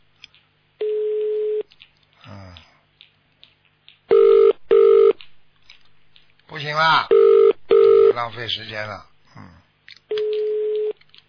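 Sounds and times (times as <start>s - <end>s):
telephone line beeps: 0.8s - 1.6s, 4.1s - 5.2s, 7.1s - 8.2s, 10.1s - 11.0s
speech: 6.8s - 7.2s, 8.2s - 9.6s.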